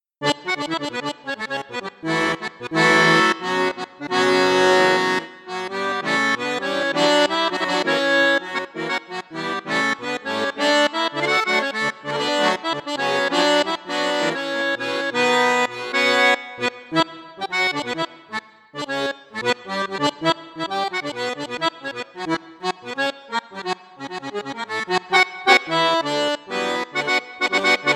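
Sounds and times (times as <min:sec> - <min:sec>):
accordion with sixteen eight eight register: 0:00.0 - 0:27.9.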